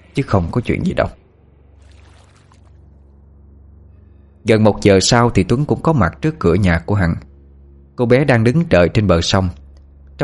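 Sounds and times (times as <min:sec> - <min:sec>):
low hum: 0:00.0 - 0:10.2
speech: 0:00.2 - 0:01.2, 0:04.4 - 0:07.3, 0:08.0 - 0:09.6
water washing as a wooden boat is rowed along a river: 0:01.8 - 0:02.8.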